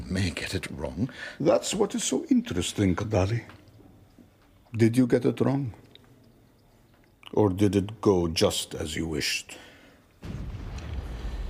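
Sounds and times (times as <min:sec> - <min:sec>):
speech: 0:00.1 - 0:03.6, 0:04.7 - 0:05.8, 0:07.3 - 0:10.4
cannon firing with heavy boom: 0:10.2 - 0:11.4.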